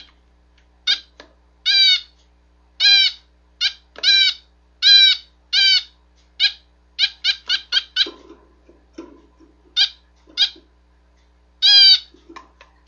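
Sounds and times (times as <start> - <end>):
female owl calling: 0.9 - 2.1, 2.8 - 8.1, 11.7 - 12.1.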